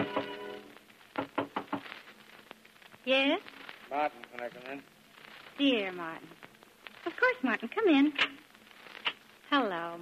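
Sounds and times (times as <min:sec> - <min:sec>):
firm knocking on a door: 0:01.2 - 0:01.8
speech: 0:03.1 - 0:05.0, 0:05.6 - 0:06.4, 0:07.1 - 0:08.4, 0:09.5 - 0:10.0.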